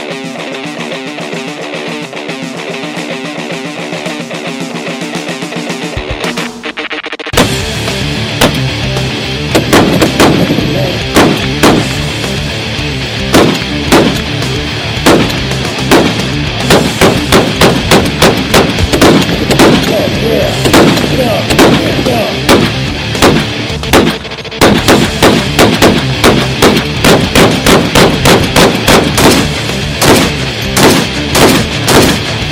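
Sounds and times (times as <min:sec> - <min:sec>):
U.S. Army issue tracer rounds being fired: 0:07.3 - 0:12.4, 0:13.2 - 0:32.4.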